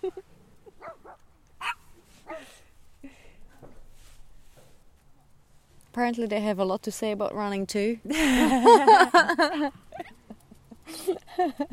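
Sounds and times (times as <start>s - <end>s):
several dogs barking: 0.8s - 2.4s
dogs making high whimpering yips: 1.6s - 2.4s
speech: 6.0s - 9.9s, 11.4s - 11.7s
laughter: 8.1s - 11.7s.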